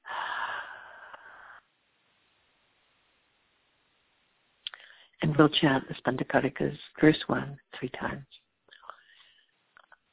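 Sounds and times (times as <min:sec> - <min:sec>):
deep breath exhaled fully during a guided breathing exercise: 0:00.0 - 0:01.6
speech: 0:05.4 - 0:08.4.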